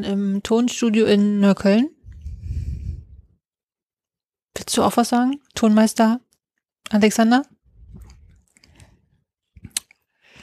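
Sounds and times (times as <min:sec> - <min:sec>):
speech: 0:00.0 - 0:02.0, 0:04.7 - 0:06.2, 0:06.9 - 0:07.6
sound engineer chewing food in a recording studio in Neukölln: 0:07.8 - 0:10.4
teeth clicking: 0:09.6 - 0:10.0.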